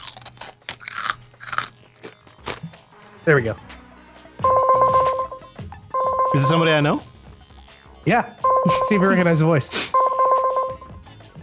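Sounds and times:
crunching and chewing of potato chips: 0.0s - 2.7s
speech: 3.2s - 3.7s, 6.3s - 7.1s, 8.0s - 10.0s
phone dialing out a call with steady electronic tone: 4.4s - 6.9s, 8.4s - 11.0s.

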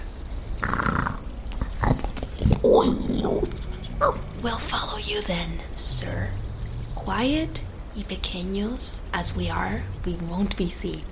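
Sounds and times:
huge creature snoring breaths in a cave: 0.6s - 3.6s
speech: 2.8s - 6.4s, 7.1s - 11.1s.

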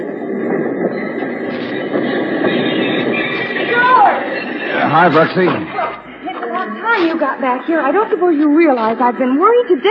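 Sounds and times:
work train arriving in La Paz rumbling on rails: 0.0s - 9.8s
speech: 5.0s - 5.8s, 7.2s - 9.8s.

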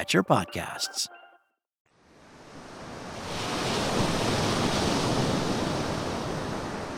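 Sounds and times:
speech: 0.0s - 1.2s
ocean surf roaring at a beach: 2.2s - 6.9s.

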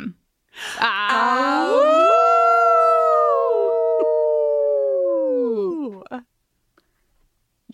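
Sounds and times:
people howling like wolves: 0.8s - 6.2s.

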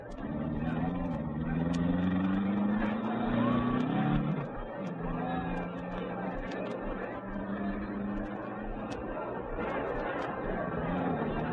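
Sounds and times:
crowd chatter: 0.0s - 11.5s
racing car engines idling and creeping along: 0.0s - 11.5s.

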